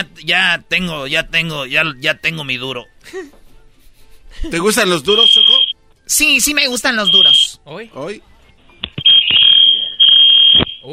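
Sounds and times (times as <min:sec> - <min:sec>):
speech: 0:00.0 - 0:03.4, 0:04.3 - 0:08.3
building fire alarm high-pitched tone: 0:05.1 - 0:05.8, 0:07.0 - 0:07.5, 0:09.0 - 0:10.9.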